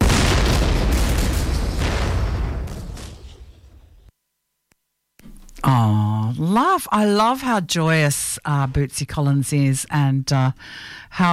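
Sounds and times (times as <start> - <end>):
explosion in a minefield: 0.0 - 4.1
speech: 5.7 - 11.3.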